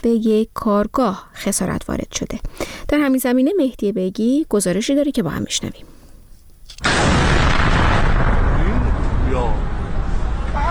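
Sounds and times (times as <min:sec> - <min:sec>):
speech: 0:00.0 - 0:06.0
drone-attack explosion roar and rumble in Isfahan: 0:06.8 - 0:10.6.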